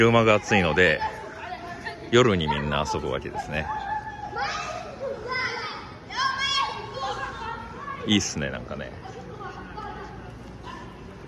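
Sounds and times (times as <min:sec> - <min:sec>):
speech: 0:00.0 - 0:01.2, 0:02.1 - 0:04.7, 0:08.0 - 0:09.3
children shouting while playing soccer in a plaza: 0:00.0 - 0:08.3, 0:09.0 - 0:11.2
murmur: 0:00.0 - 0:11.2.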